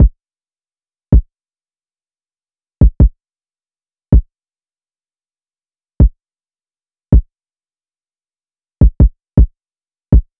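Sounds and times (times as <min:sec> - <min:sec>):
160 BPM kick drum loop: 0:02.8 - 0:03.1, 0:08.8 - 0:09.5, 0:10.1 - 0:10.3.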